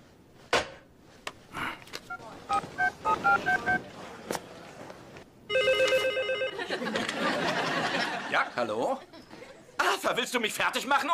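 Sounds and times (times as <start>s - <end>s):
telephone dialing tones: 2.1s - 3.8s, 5.5s - 6.6s
electronic telephone ring: 5.5s - 6.7s
laughter: 6.4s - 9.8s
speech: 8.6s - 9.1s, 10.0s - 11.1s.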